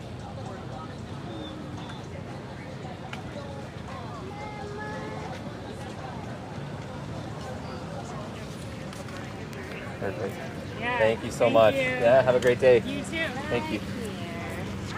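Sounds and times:
murmur of many voices at an outdoor farmers market in Phoenix Arizona: 0.0 - 14.9.

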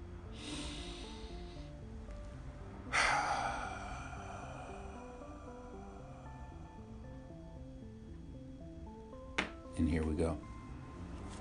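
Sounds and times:
soft steady music: 0.0 - 11.4
deep breath inhale and exhale: 0.2 - 2.0, 2.8 - 7.4
speech: 9.8 - 10.5.

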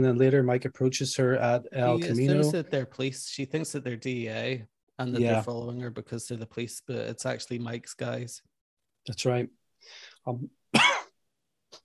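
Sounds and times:
speech: 0.0 - 10.9
person coughing: 10.8 - 11.1.

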